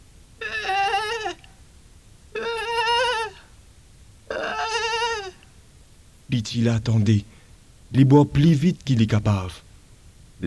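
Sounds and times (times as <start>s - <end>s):
mother ewe bleating for her lamb: 0.4s - 1.5s, 2.3s - 3.5s, 4.3s - 5.5s
speech: 6.3s - 9.7s.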